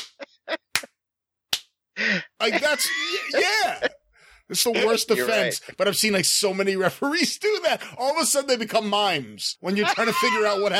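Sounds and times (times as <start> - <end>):
laughter: 0.0 - 0.9, 2.0 - 6.0, 9.6 - 10.7
hands slapping together: 0.0 - 1.8
speech: 2.4 - 3.9, 4.5 - 10.7.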